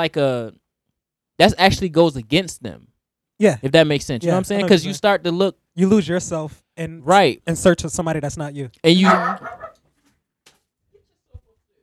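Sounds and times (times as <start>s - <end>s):
speech: 0.0s - 0.6s, 1.4s - 9.6s
dog whimpering and yipping: 9.0s - 9.8s.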